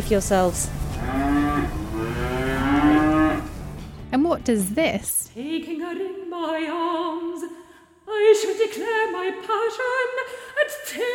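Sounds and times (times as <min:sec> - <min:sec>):
speech: 0:00.1 - 0:01.7, 0:04.1 - 0:07.5, 0:08.1 - 0:11.1
cattle mooing on a farm: 0:01.0 - 0:03.6.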